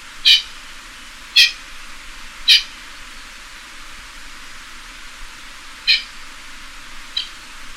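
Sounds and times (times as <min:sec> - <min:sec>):
pheasant clucks: 0:05.9 - 0:06.1.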